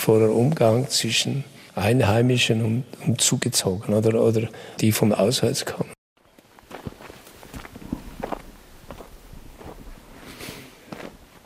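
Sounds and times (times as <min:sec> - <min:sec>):
speech: 0:00.0 - 0:05.9
footsteps of people strolling on hard ground through a mountain village: 0:06.2 - 0:11.4.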